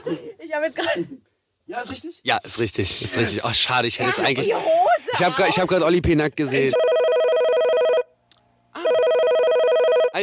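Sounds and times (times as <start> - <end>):
speech: 0.0 - 7.0
loud electronic telephone ring with a buzzing pulsed tone: 6.7 - 8.1, 8.8 - 10.2.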